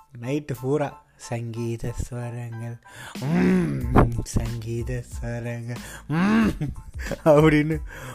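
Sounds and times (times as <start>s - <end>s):
speech: 0.1s - 8.1s
voice mimicking a person snoring on a train berth: 3.2s - 4.0s.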